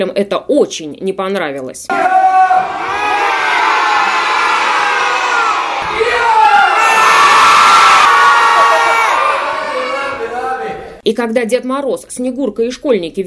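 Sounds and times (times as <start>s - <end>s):
speech: 0.0s - 3.0s, 11.1s - 13.2s
crowd of young children in a theatre audience shouting and roaring: 1.9s - 10.9s.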